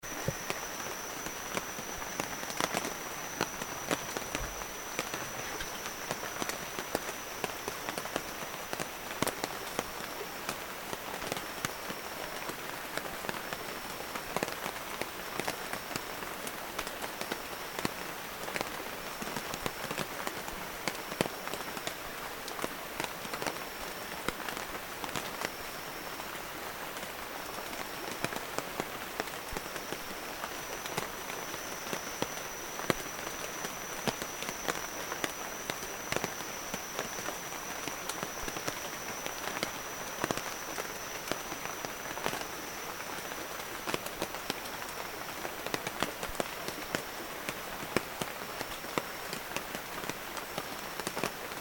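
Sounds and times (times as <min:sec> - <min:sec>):
rain at a camp in the Upper Baleh: 0:00.0 - 0:51.5.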